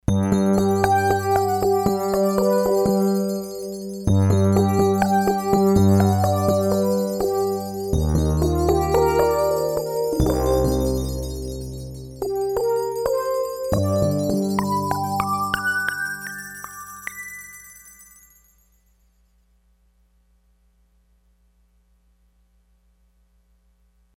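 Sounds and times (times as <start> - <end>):
synthesizer music: 0.1 - 17.7.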